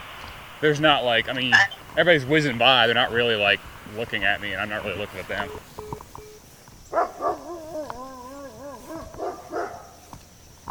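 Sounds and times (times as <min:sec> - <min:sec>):
steady outdoor hiss: 0:00.0 - 0:10.6
speech: 0:00.6 - 0:05.8
dogs barking and howling: 0:06.9 - 0:10.1.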